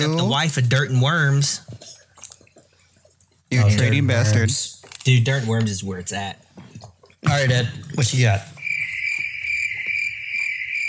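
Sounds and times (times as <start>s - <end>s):
speech: 0.0s - 2.0s, 3.5s - 6.4s, 7.2s - 8.5s
crickets chirping: 8.6s - 10.8s.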